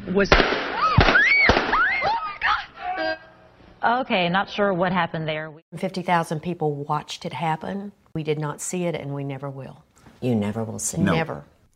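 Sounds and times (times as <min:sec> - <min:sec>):
speech: 0:00.1 - 0:00.7, 0:03.8 - 0:11.5
gunshots during a live TV interview: 0:00.3 - 0:01.9.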